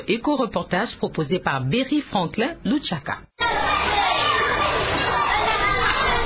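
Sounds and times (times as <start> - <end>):
speech: 0.0 - 3.6
many children shouting and playing at a play area: 3.4 - 6.2.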